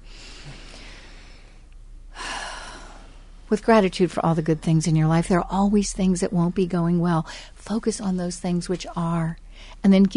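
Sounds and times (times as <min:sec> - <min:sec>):
deep breath: 0:00.0 - 0:03.4
speech: 0:03.5 - 0:10.1.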